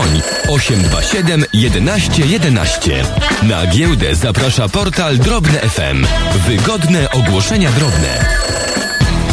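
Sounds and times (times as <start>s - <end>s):
telephone ringing: 0.0s - 3.1s, 6.8s - 9.2s
speech: 0.5s - 8.4s.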